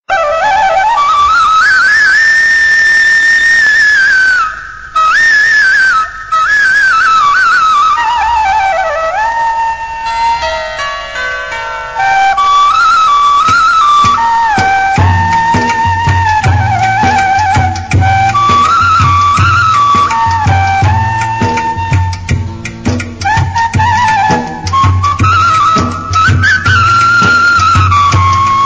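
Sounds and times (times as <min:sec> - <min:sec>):
Tamil devotional instrumental music: 0:00.0 - 0:28.6.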